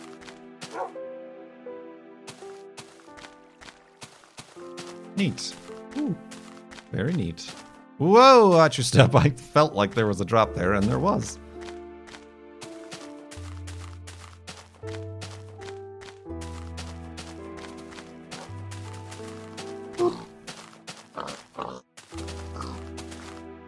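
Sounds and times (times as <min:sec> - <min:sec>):
speech: 0:05.2 - 0:11.4
pig oinking and squealing: 0:20.0 - 0:20.3, 0:21.2 - 0:21.8, 0:22.6 - 0:22.9.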